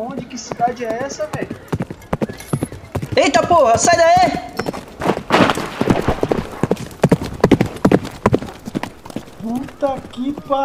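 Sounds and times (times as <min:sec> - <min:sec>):
speech: 0:00.0 - 0:01.7, 0:03.2 - 0:04.5, 0:09.5 - 0:10.6
horse hooves clip-clopping as a horse trots by: 0:00.0 - 0:10.6.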